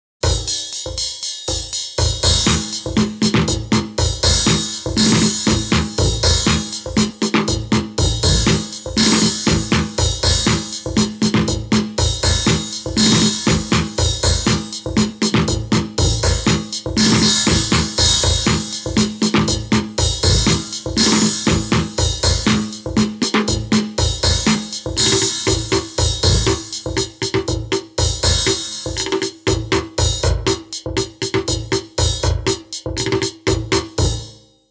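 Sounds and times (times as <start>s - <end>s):
drum kit: 0.2s - 34.4s
synthesizers: 2.4s - 26.8s.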